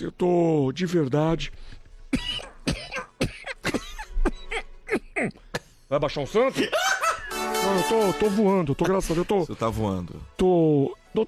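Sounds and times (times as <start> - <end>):
speech: 0.0 - 2.3, 5.2 - 6.9, 7.5 - 11.2
person coughing sharply, slightly raspy: 2.1 - 5.8, 6.6 - 7.1
laughter: 6.4 - 8.4.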